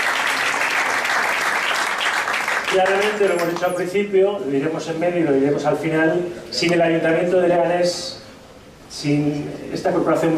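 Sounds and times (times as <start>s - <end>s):
audience applause at a public celebration in Leganés: 0.0s - 3.6s
speech: 2.7s - 8.2s, 8.9s - 10.3s.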